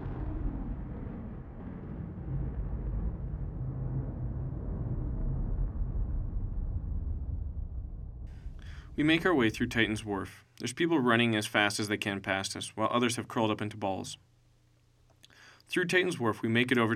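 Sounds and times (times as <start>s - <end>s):
massive explosion from an elementary school: 0.0s - 10.2s
speech: 9.0s - 14.3s, 15.7s - 16.9s.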